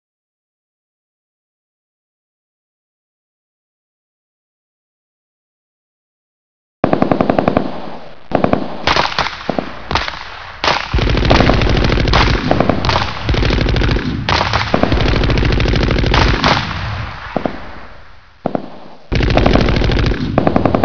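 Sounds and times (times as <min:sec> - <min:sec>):
gunfire exchange: 0:08.3 - 0:20.8.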